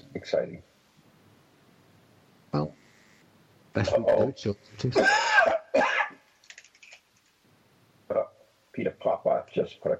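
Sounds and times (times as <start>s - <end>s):
speech: 0.2s - 0.7s, 2.5s - 2.8s, 3.8s - 5.3s, 9.6s - 9.9s
harsh loud coughs: 4.9s - 6.2s
faint scattered clicks: 6.4s - 7.4s.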